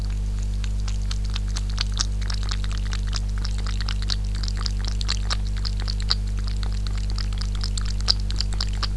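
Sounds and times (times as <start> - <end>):
cat drinking water: 0.0 - 8.9.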